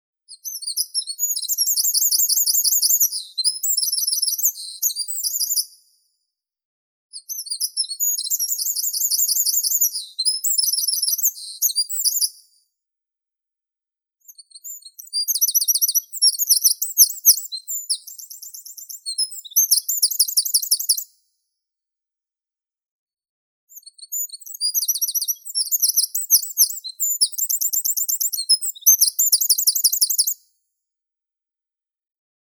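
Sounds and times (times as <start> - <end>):
wren Troglodytes troglodytes singing: 0.4 - 5.6, 7.2 - 12.3, 14.3 - 21.0, 23.7 - 30.4.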